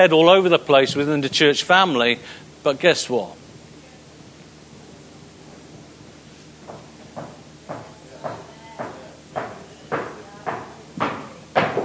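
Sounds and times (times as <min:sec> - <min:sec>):
speech: 0:00.0 - 0:03.4
knocking on floor: 0:06.6 - 0:11.8.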